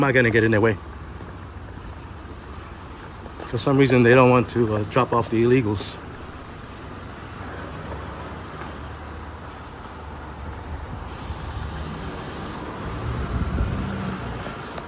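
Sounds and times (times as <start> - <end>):
speech: 0.0 - 0.9, 3.5 - 6.1
bus engine rumbling outdoors and pulling off: 0.0 - 14.8
bus air hiss: 11.1 - 12.7.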